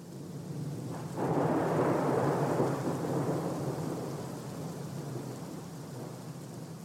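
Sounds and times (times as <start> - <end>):
heavy rain pouring in a thunderstorm: 0.1 - 6.8
deep roll of thunder rumbling: 0.9 - 6.2.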